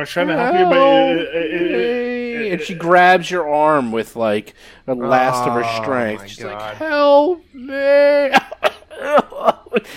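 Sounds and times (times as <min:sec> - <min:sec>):
speech: 0:00.0 - 0:08.4, 0:09.8 - 0:09.9
laughter: 0:00.2 - 0:03.1, 0:08.3 - 0:09.9
person performing a strained drawn-out vocal groan: 0:00.3 - 0:02.9.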